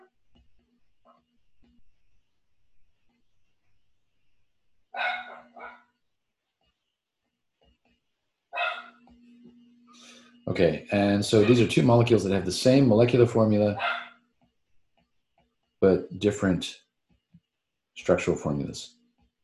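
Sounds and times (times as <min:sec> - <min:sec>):
dogs barking: 0:05.0 - 0:05.9, 0:08.6 - 0:09.0, 0:11.4 - 0:11.9, 0:13.8 - 0:14.2
speech: 0:10.5 - 0:14.0, 0:15.8 - 0:16.8, 0:18.0 - 0:19.0.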